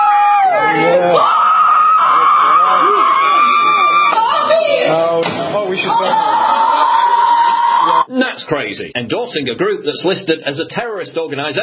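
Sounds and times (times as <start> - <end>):
protesters screaming at the sky: 0.0 - 4.9, 5.6 - 8.1
crowd clamoring: 0.0 - 8.1
speech: 8.7 - 11.6.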